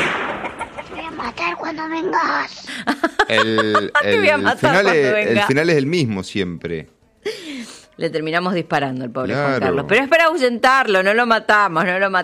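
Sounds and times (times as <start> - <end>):
chickens, roosters and young chicks clucking and squawking: 0.2 - 1.7
speech: 1.9 - 7.4, 8.0 - 12.2
laughter: 2.7 - 5.4.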